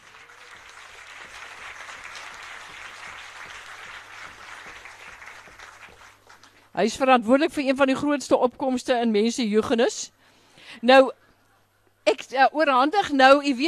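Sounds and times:
audience applause: 0:00.0 - 0:06.6
speech: 0:06.8 - 0:10.2, 0:10.8 - 0:11.2, 0:12.0 - 0:13.6.

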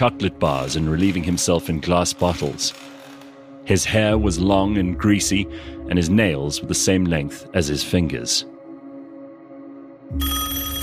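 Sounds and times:
speech: 0:00.0 - 0:03.0, 0:03.7 - 0:08.6, 0:10.1 - 0:10.4
telephone on a table ringing with a bell-like trill: 0:10.1 - 0:10.8.

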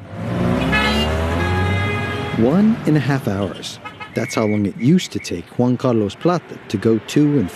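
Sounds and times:
dense traffic on the winding streets of La Paz: 0:00.0 - 0:07.5
car horns honking: 0:00.4 - 0:05.5
speech: 0:02.4 - 0:07.5.

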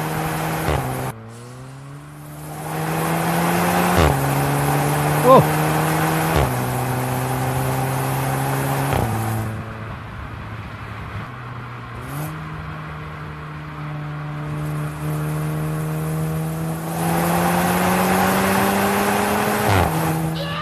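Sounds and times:
VW GTI Clubsport engine revving through gear changes: 0:00.0 - 0:09.7, 0:14.3 - 0:20.5.

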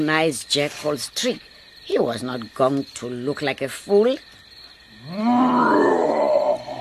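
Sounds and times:
speech: 0:00.0 - 0:04.3, 0:05.0 - 0:05.7
lion roaring: 0:05.0 - 0:06.7.

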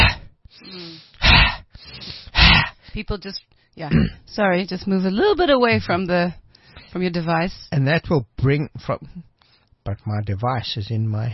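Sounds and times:
fire breath breathing exercise: 0:00.0 - 0:03.8
speech: 0:03.0 - 0:11.3.

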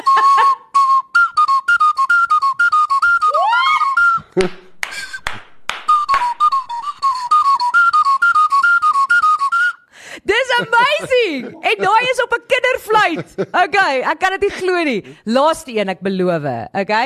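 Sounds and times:
person bursting into laughter: 0:00.0 - 0:00.7, 0:04.2 - 0:04.6, 0:10.3 - 0:13.8
toy whistle playing short uneven notes: 0:00.0 - 0:04.2, 0:05.9 - 0:09.8
speech: 0:04.4 - 0:04.6, 0:11.4 - 0:17.0.

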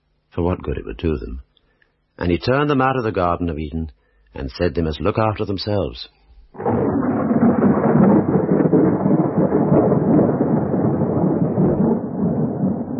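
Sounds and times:
speech: 0:00.4 - 0:01.5, 0:02.2 - 0:07.0
deep rolling thunder of a heavy thunderstorm: 0:06.6 - 0:12.9.

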